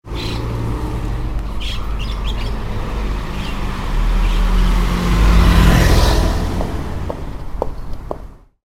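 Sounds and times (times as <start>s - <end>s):
car: 0.0s - 8.5s
bird: 0.1s - 0.5s, 1.4s - 2.6s, 3.4s - 4.8s
footsteps: 6.5s - 8.3s.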